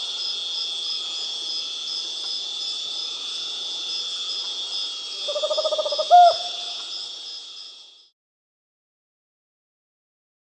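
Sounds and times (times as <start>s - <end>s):
high-pitched insect drone: 0.0s - 8.2s
Tropical screech-owl Otus choliba pulsed trill in South America: 5.1s - 6.8s.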